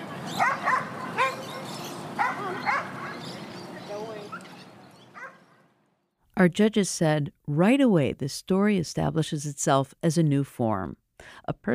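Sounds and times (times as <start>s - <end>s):
steady outdoor murmur of activity at a busy dog park: 0.0s - 5.5s
dogs barking in sharp bursts at a busy dog park: 0.2s - 3.5s, 4.2s - 5.6s
speech: 6.4s - 11.7s.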